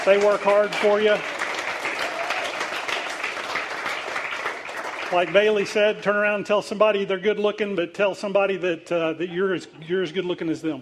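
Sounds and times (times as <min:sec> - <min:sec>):
speech: 0:00.0 - 0:01.3, 0:05.1 - 0:10.8
applause from a large group: 0:00.0 - 0:05.9.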